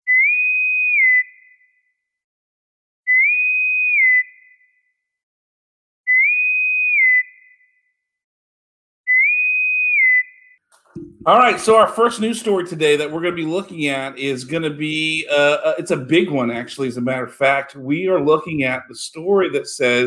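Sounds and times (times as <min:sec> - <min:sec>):
bosun's pipe call: 0:00.0 - 0:01.8, 0:03.1 - 0:04.6, 0:06.1 - 0:07.8, 0:09.1 - 0:10.5
speech: 0:11.0 - 0:20.0.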